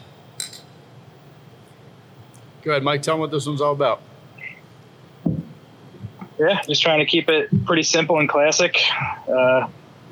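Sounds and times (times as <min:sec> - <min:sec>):
beer glasses of IPA clinking in a toast: 0:00.4 - 0:00.7
speech: 0:02.6 - 0:04.1, 0:06.4 - 0:09.8.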